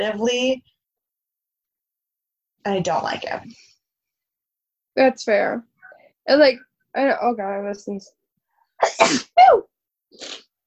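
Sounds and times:
speech: 0:00.0 - 0:00.7, 0:02.6 - 0:03.7, 0:05.0 - 0:05.7, 0:06.3 - 0:08.2, 0:08.8 - 0:10.5
person sneezing: 0:08.8 - 0:09.6.

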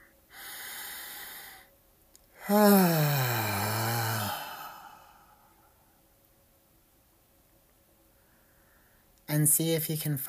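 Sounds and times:
deep breath with voiced sigh on the exhale: 0:00.3 - 0:01.7, 0:02.4 - 0:05.9, 0:08.2 - 0:09.1
speech: 0:02.5 - 0:03.2, 0:09.4 - 0:10.2.

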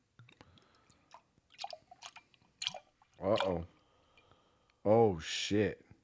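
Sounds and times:
dripping pops: 0:00.2 - 0:04.3
thick 12% ABV beer pouring into a glass: 0:01.1 - 0:04.3
speech: 0:03.2 - 0:03.8, 0:04.8 - 0:05.8.

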